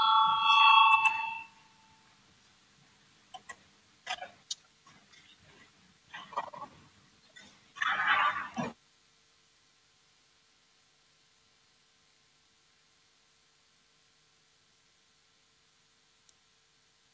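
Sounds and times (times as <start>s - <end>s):
bright electronic parliamentary voting bell ringing: 0.0s - 2.0s.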